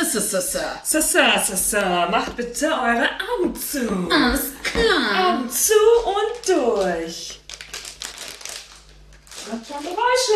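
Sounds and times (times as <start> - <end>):
speech: 0.1 - 7.4, 9.5 - 10.3
stiff plastic candy bag crinkling and rustling being pulled open: 7.3 - 10.3.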